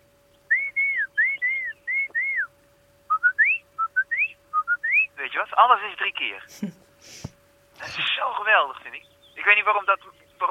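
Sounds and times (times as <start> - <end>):
person whistling an imitation of song thrush phrases: 0.5 - 2.5, 3.1 - 5.2
speech: 5.5 - 10.5.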